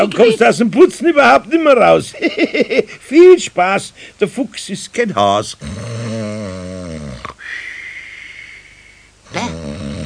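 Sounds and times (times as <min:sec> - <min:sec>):
speech: 0:00.0 - 0:06.1
human snoring with rasping rattling snores: 0:05.6 - 0:10.0
long airy breath carrying a thin whistle: 0:07.4 - 0:09.1.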